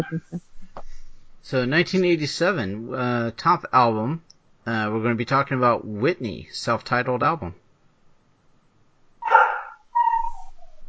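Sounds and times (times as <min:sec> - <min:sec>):
speech: 0:00.0 - 0:00.6, 0:01.4 - 0:07.6
dog barking: 0:09.2 - 0:10.5
dog whining yelp: 0:09.2 - 0:10.8.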